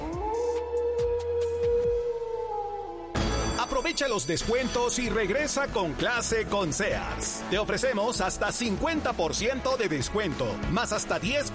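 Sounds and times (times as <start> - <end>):
wolf howling in one long wavering note: 0.0 - 3.2
faint music: 3.2 - 11.5
speech: 3.8 - 11.5.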